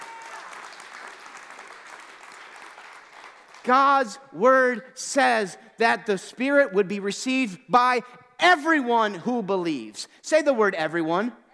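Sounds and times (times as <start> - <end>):
audience at a sermon clapping: 0.0 - 4.2
speech: 3.6 - 11.4.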